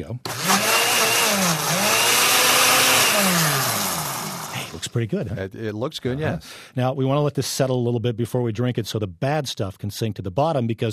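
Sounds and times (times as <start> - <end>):
speech: 0.0 - 0.6, 1.3 - 2.0, 3.2 - 3.8, 4.8 - 10.9
blender running, blending strawberries: 0.3 - 4.8.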